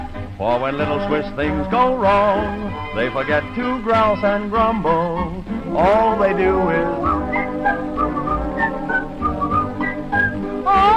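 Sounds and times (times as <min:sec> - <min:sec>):
low sustained instrumental backing: 0:00.0 - 0:10.9
speech: 0:00.4 - 0:08.1
person whistling a bright lilting Swiss-style song: 0:06.9 - 0:10.9.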